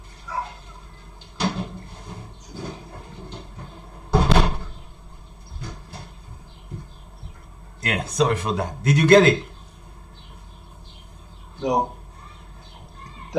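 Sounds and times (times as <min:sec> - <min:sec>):
door thudding shut: 0:04.1 - 0:04.9
speech: 0:07.9 - 0:09.5.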